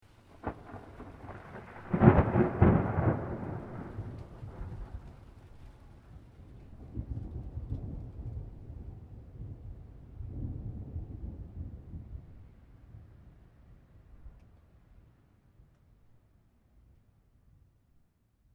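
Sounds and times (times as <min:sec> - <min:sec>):
medium thunder clap with long rumble tail: 0:00.2 - 0:14.4.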